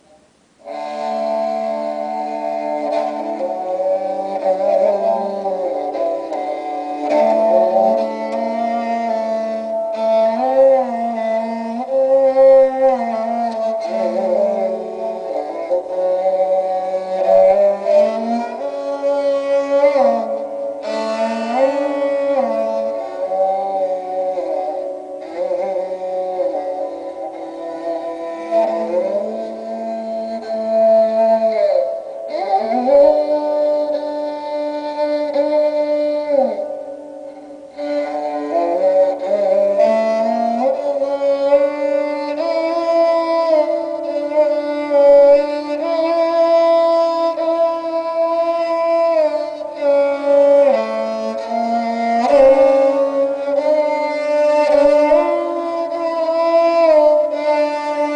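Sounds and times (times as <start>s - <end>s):
sarangi playing: 0.0s - 58.1s.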